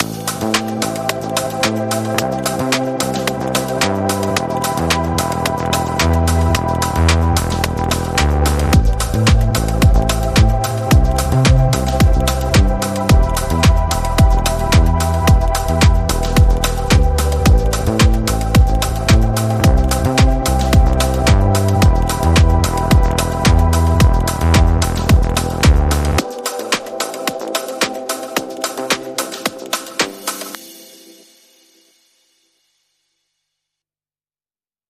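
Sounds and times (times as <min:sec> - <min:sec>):
Alpine rhythmic ambience: 0:00.0 - 0:32.4.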